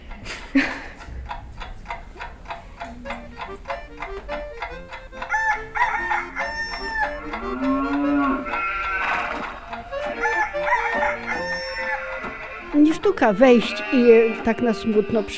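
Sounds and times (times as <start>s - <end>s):
other livestock calling in a museum farmstead farmyard: 2.8s - 15.3s
rooster crowing in a museum farmstead farmyard: 5.3s - 12.6s
low cow-like moo of livestock: 5.4s - 12.8s, 13.4s - 15.3s
speech: 13.0s - 15.3s.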